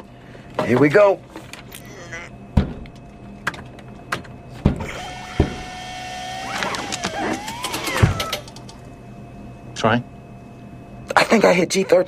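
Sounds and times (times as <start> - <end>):
speech: 0.7 - 1.3, 9.8 - 10.1, 11.3 - 12.0
snack vending machine lever mechanism whirring: 2.5 - 10.0
sharp mechanical clicks and knocks: 6.7 - 8.8.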